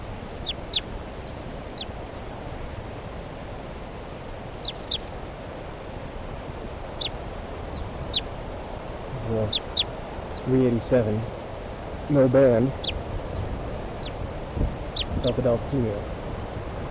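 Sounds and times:
soft alternate type 2 bird flight calls: 0.0s - 2.0s, 4.6s - 5.4s, 6.8s - 10.9s, 12.5s - 15.9s
steady broadband hiss: 0.0s - 16.9s
speech: 10.5s - 11.3s, 12.1s - 12.9s, 15.2s - 16.1s.

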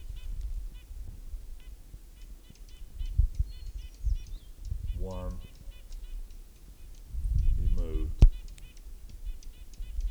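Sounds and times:
hermit warbler singing an atypical song: 2.4s - 10.0s.

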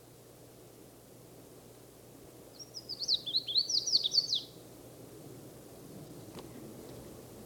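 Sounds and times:
low background hiss: 0.0s - 7.4s
Red-faced Warbler twittering song while flying from tree to tree: 2.5s - 4.6s.

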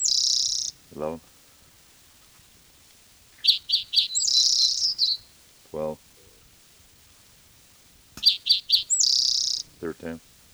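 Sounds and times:
black-throated gray warbler singing buzzy notes: 0.0s - 1.2s, 3.4s - 6.0s, 8.2s - 10.2s
speech: 1.0s - 1.3s, 5.7s - 6.1s, 9.8s - 10.3s.

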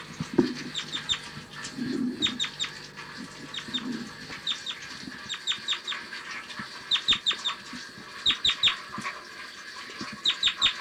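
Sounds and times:
bird flight calls: 0.0s - 6.0s
low clucking sounds: 0.0s - 9.2s.

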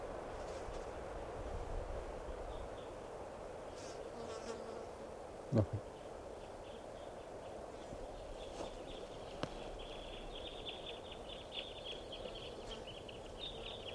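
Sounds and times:
soft outdoor hiss: 0.0s - 13.9s
speech: 5.5s - 5.9s
flock of small birds chirping: 5.7s - 13.9s.

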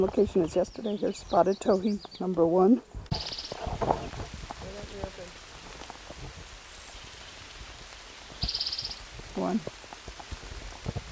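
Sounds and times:
speech: 0.0s - 4.0s, 9.5s - 9.7s
steady rain falling by a creek in June: 3.1s - 11.1s.

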